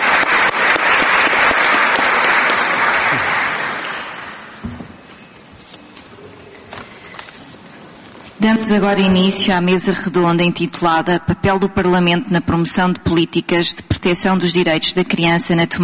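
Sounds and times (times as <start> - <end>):
seminar audience applause: 0.0 - 4.6
speech: 8.4 - 15.8.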